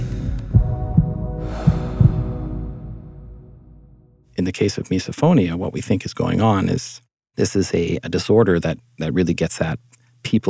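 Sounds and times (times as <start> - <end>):
heartbeat thumping in low soft pulses: 0.4 - 2.5
faint breathy whoosh: 1.4 - 3.5
speech: 4.4 - 10.4.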